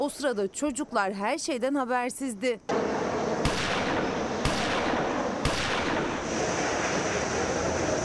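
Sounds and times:
speech: 0.0s - 3.0s
steady rushing noise: 2.7s - 8.0s
gunshots: 3.4s - 6.3s.

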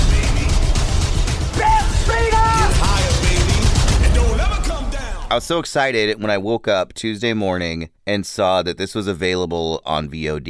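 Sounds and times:
rapid gunshots fired at a bear in a film scene: 0.0s - 5.3s
people shouting: 1.5s - 5.3s
speech: 5.4s - 10.4s.

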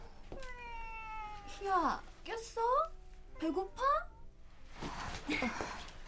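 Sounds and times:
cat meowing: 0.3s - 1.7s
speech: 1.7s - 4.0s, 5.3s - 5.8s.

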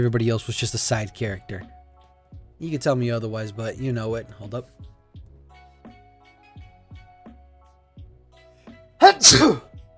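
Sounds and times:
speech: 0.0s - 1.8s, 2.6s - 4.9s, 9.2s - 9.7s
person sneezing: 9.0s - 9.7s.

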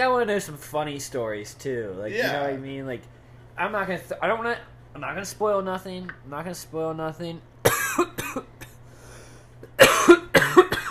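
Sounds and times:
speech: 0.0s - 7.5s
low steady hum: 0.0s - 10.8s
harsh coughs into the microphone: 7.6s - 8.8s, 9.6s - 10.8s.

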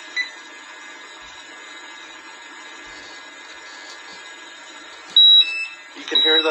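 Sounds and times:
gas detector alarm beeping with sharp high electronic tones: 0.1s - 0.4s, 5.1s - 6.4s.

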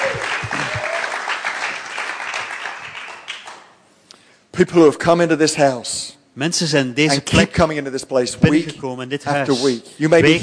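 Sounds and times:
crowd applauding: 0.0s - 3.8s
speech: 4.6s - 10.4s.

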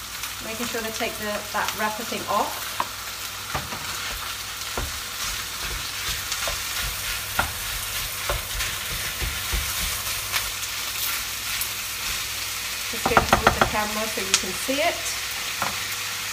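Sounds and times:
minced meat frying in a pan: 0.0s - 16.3s
speech: 0.4s - 2.7s, 13.8s - 15.8s
stirring scrapes and taps: 3.5s - 12.4s.

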